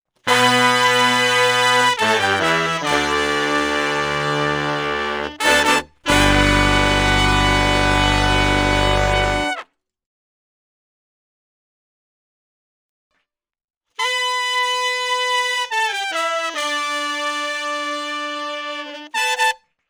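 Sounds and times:
horn section with saxophone and trumpet: 0:00.3 - 0:09.6, 0:14.0 - 0:19.6.

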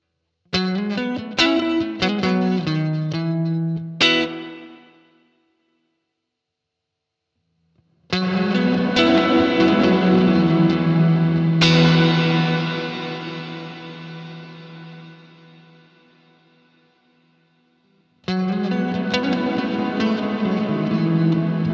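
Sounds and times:
guitar riff through VALETON Dapper Indie hall reverb: 0:00.6 - 0:05.2, 0:08.1 - 0:16.9, 0:17.8 - 0:21.7.

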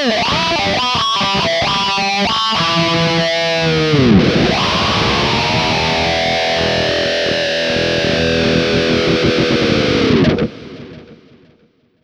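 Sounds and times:
lead synth with auto quack compressor effect: 0:00.2 - 0:11.3.

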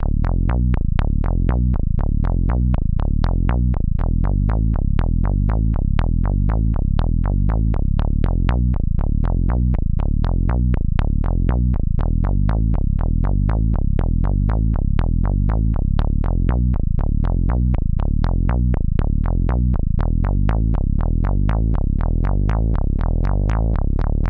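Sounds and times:
WAVES Element 2 bass: 0:00.0 - 0:24.2.

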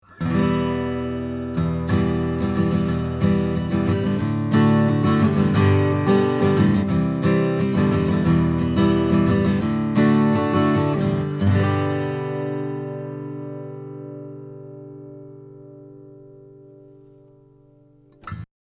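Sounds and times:
40 cm 15-fret acoustic guitar: 0:00.0 - 0:18.5.

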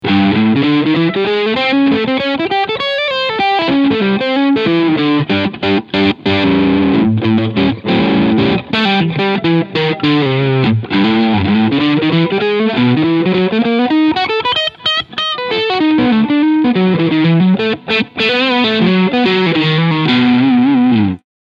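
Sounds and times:
crunchy electric guitar with HSH pickups on single-coil setting: 0:00.0 - 0:21.2.

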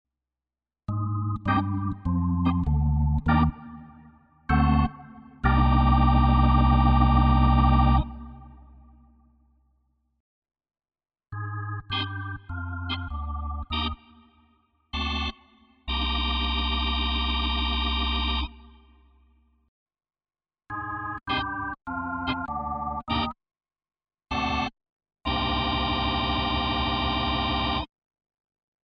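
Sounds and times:
organ playing: 0:00.9 - 0:08.9, 0:11.4 - 0:14.2, 0:15.0 - 0:18.6, 0:20.7 - 0:23.4, 0:24.3 - 0:24.7, 0:25.3 - 0:27.9.

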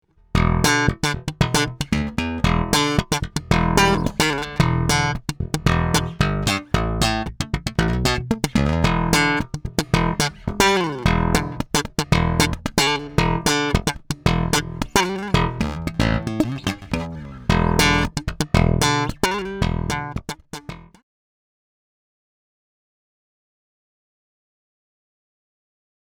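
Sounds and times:
active slap bass: 0:00.3 - 0:21.0.

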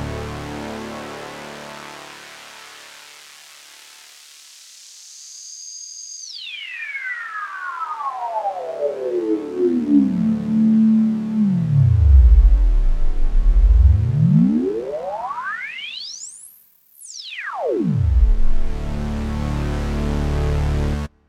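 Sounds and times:
high-pass filtered synthesizer: 0:06.3 - 0:16.5, 0:17.1 - 0:21.0.

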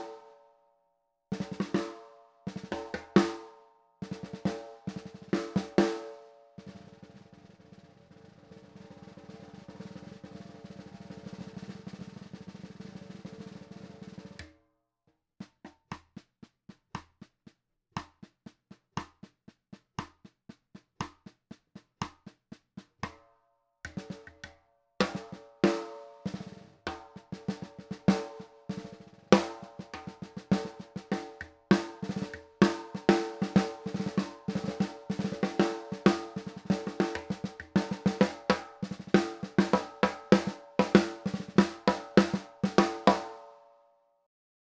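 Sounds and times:
large snare drum with low tuning: 0:01.3 - 0:01.9, 0:04.1 - 0:14.5, 0:15.4 - 0:23.2, 0:25.0 - 0:43.4.

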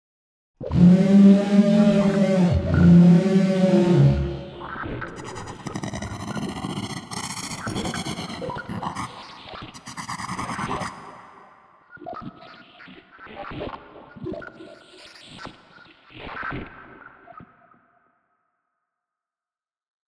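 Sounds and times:
creatures groaning: 0:00.8 - 0:11.3.

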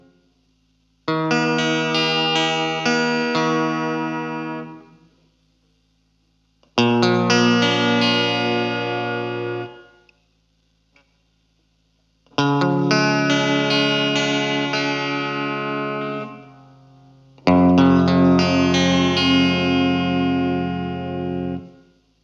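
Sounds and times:
Stratocaster electric guitar: 0:01.0 - 0:05.2, 0:06.6 - 0:10.1, 0:12.2 - 0:22.0.

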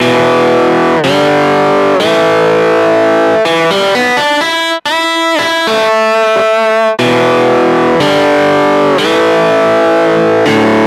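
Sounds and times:
electric guitar through EHX Soul Food overdrive pedal: 0:00.0 - 0:10.8.

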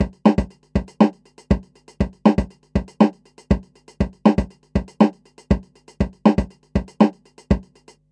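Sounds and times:
beat recorded with AKG414B microphone: 0:00.0 - 0:07.9.

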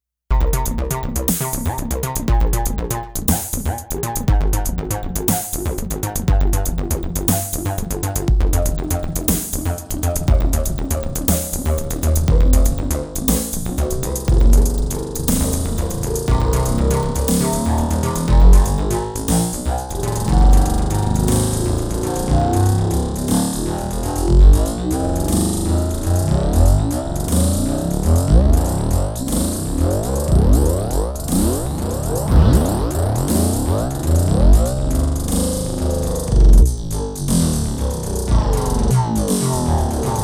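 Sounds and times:
beat through Eventide H910 with feedback: 0:00.3 - 0:40.2.

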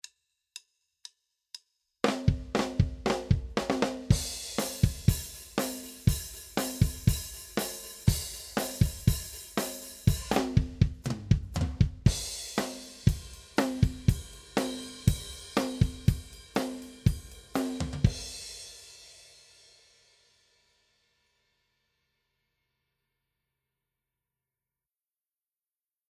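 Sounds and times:
drumbeat with bass drum microphone processed: 0:02.0 - 0:18.6.

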